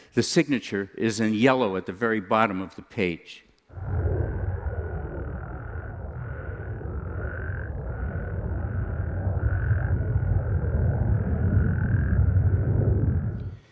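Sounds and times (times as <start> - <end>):
speech: 0.2 - 4.1
deep continuous roar of a passing jet flyby: 3.8 - 13.6
dense chorus of frogs trilling: 4.3 - 13.3.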